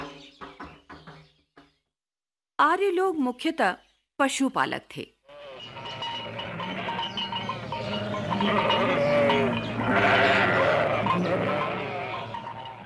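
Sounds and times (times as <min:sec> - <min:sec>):
speech: 0:02.7 - 0:05.2, 0:08.4 - 0:09.0
flock of sheep and goats bleating: 0:05.3 - 0:12.8.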